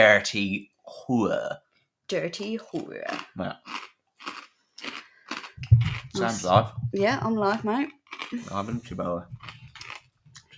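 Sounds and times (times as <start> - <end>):
speech: 0.0 - 3.9, 6.2 - 9.6
crunchy chewing: 3.1 - 6.2, 7.9 - 8.7, 9.4 - 10.5.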